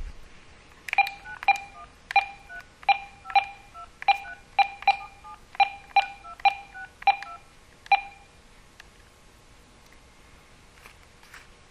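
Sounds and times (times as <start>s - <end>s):
phone keypad button tones: 0.9s - 8.3s.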